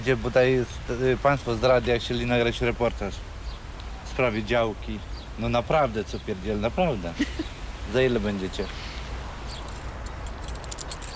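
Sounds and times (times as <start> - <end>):
speech: 0.0 - 3.3, 4.2 - 8.9
low steady hum: 0.0 - 11.1
large bunch of garden allotment keys jingling: 9.4 - 11.1.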